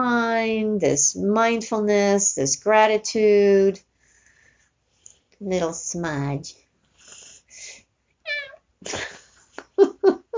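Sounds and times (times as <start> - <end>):
speech: 0.4 - 3.9, 5.4 - 6.6
breathy hisses: 7.0 - 7.8
cat giving a short nasal meow: 8.2 - 8.6.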